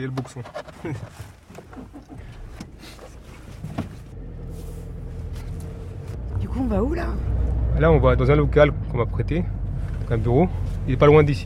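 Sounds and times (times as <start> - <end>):
speech: 0.0 - 1.4, 6.6 - 11.4
car engine and road rumble in cabin while driving: 0.0 - 11.4.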